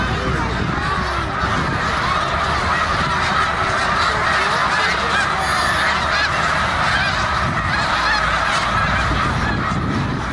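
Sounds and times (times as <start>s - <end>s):
snow goose flock calling with nasal honks at a reservoir: 0.0s - 10.3s.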